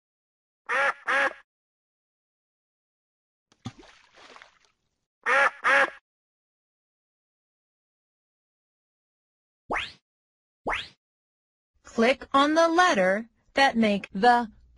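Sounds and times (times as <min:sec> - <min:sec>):
duck quacking: 0:00.7 - 0:01.4, 0:05.2 - 0:06.0
brief splash of water: 0:03.5 - 0:05.0
speech: 0:12.0 - 0:14.7.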